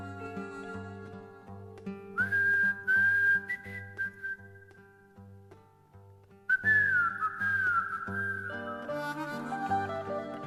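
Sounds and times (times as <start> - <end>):
instrumental backing music: 0.0 - 10.4
whistled song refrain: 2.1 - 4.8, 6.5 - 10.4.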